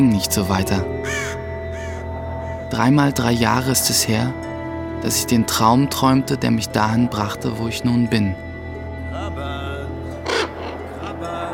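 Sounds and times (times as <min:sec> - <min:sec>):
speech: 0:00.0 - 0:01.4, 0:02.7 - 0:04.4, 0:05.0 - 0:08.4
ravens cawing: 0:00.8 - 0:02.8, 0:10.1 - 0:11.5.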